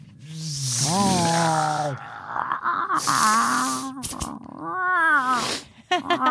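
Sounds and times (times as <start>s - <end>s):
cats hissing in a fight: 0.1s - 2.2s, 2.8s - 4.5s, 5.1s - 5.8s.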